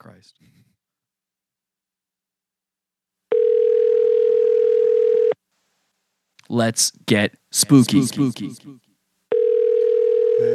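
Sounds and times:
speech: 0.2s - 0.8s, 6.5s - 8.8s
telephone dial tone while placing a call: 3.3s - 5.4s, 9.3s - 10.5s.

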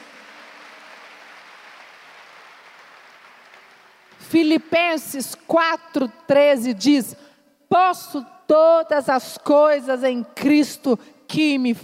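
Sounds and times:
crowd applause: 0.0s - 4.2s
speech: 4.2s - 11.8s.

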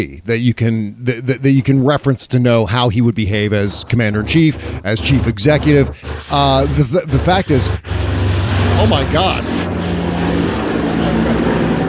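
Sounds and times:
speech: 0.0s - 8.0s, 8.8s - 9.7s
helicopter droning overhead: 3.2s - 11.8s.

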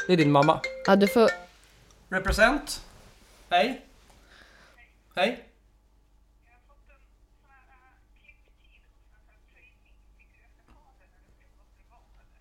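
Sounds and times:
mobile phone ringtone playing a warbling electronic melody: 0.0s - 1.6s
speech: 0.1s - 1.4s, 2.1s - 2.9s, 3.5s - 3.9s, 5.2s - 5.5s.

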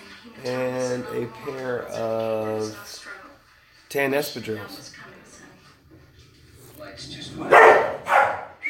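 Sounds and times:
speech: 0.4s - 3.2s, 3.9s - 5.1s, 6.8s - 8.0s
dogs barking and snarling while fighting over food: 6.5s - 8.6s.

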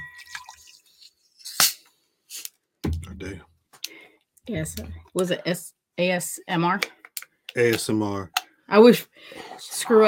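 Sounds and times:
sharp splash or clink: 0.0s - 0.9s
liquid poured into a glass: 0.0s - 1.1s
speech: 3.2s - 3.5s, 4.5s - 7.0s, 7.6s - 10.0s.

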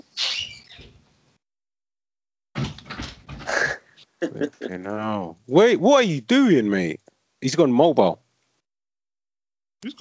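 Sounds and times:
creaky door opening: 0.0s - 1.1s
speech: 4.2s - 8.2s, 9.8s - 10.0s.

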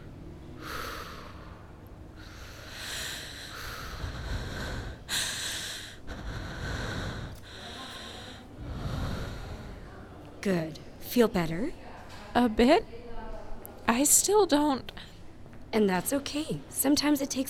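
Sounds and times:
slow breathing in and out: 0.5s - 10.1s
speech: 10.4s - 11.8s, 12.4s - 13.0s, 13.9s - 15.0s, 15.7s - 17.4s.

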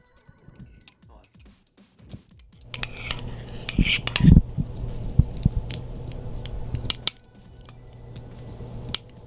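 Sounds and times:
metal spoon stirring a pot of beans: 2.6s - 9.2s.

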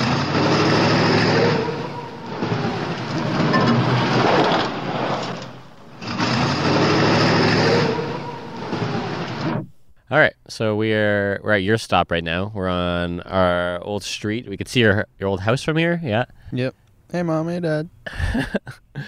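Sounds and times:
car engine humming while driving: 0.0s - 9.5s
broad road and wind roar: 0.0s - 9.6s
speech: 10.2s - 19.0s.

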